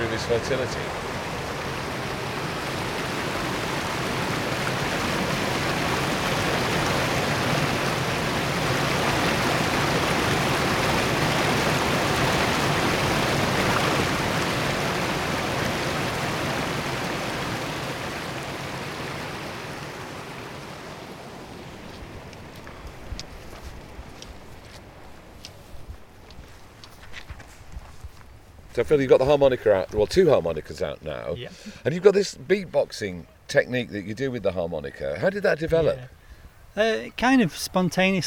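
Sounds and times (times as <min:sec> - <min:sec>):
water flowing over stone: 0:00.0 - 0:22.0
speech: 0:00.2 - 0:01.1, 0:28.8 - 0:36.2, 0:36.8 - 0:38.2.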